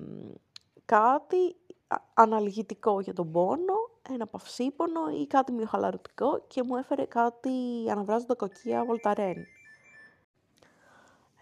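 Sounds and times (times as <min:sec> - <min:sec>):
speech: 0:00.9 - 0:09.6
faint electronic phone ring: 0:08.4 - 0:10.3.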